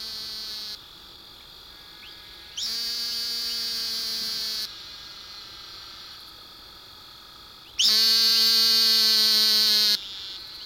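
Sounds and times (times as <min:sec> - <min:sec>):
Great Plains narrow-mouthed toad buzzing call: 0:02.6 - 0:04.7, 0:07.8 - 0:10.6.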